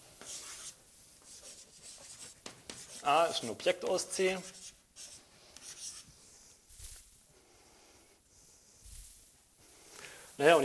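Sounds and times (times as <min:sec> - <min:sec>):
writing tool scratching on a surface while handwriting a mathematical symbol: 0:00.2 - 0:03.4, 0:04.3 - 0:06.4
speech: 0:03.1 - 0:04.6, 0:10.4 - 0:10.6.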